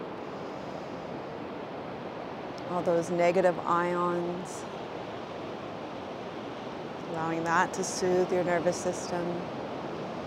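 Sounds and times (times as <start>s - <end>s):
ocean surf breaking on a beach: 0.0s - 10.2s
speech: 2.6s - 4.8s, 7.1s - 9.6s.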